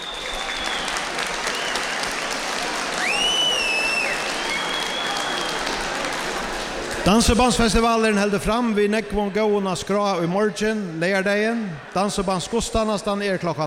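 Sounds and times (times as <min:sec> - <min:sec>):
sharp whistles from the crowd: 0:00.0 - 0:02.1, 0:03.0 - 0:05.6
audience applauding: 0:00.0 - 0:07.8
speech: 0:07.0 - 0:13.6.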